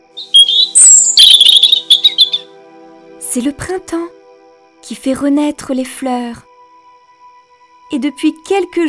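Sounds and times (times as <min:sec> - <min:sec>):
small birds singing: 0:00.0 - 0:02.6
speech: 0:03.4 - 0:04.2, 0:04.9 - 0:06.5, 0:07.9 - 0:08.8.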